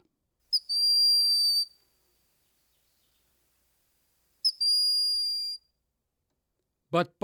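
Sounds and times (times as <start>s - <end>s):
broad-winged hawk high thin whistle: 0.5s - 1.8s, 4.4s - 5.6s.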